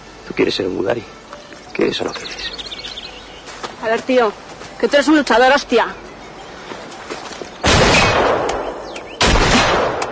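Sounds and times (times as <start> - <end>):
speech: 0.3 - 2.6, 3.8 - 6.0
loud gunshots: 7.6 - 8.6, 9.2 - 10.0.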